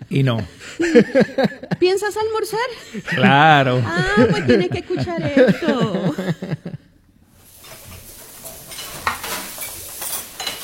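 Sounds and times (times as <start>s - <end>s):
laughter: 0.0s - 2.0s, 2.8s - 7.0s
speech: 0.1s - 6.6s
food sizzling in a kitchen: 7.2s - 10.6s
pots, pans and utensils clinking and knocking: 7.4s - 10.6s
stirring while cooking: 7.4s - 10.6s.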